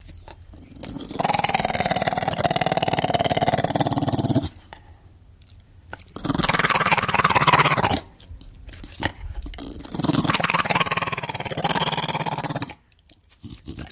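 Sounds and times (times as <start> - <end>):
pit bull terrier growling: 0.4 - 4.6, 6.1 - 8.2, 9.0 - 12.8, 13.4 - 13.9.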